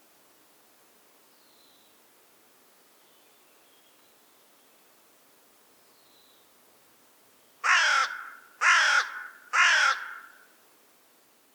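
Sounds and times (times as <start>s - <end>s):
carrion crow giving harsh hoarse caws: 7.6s - 10.5s.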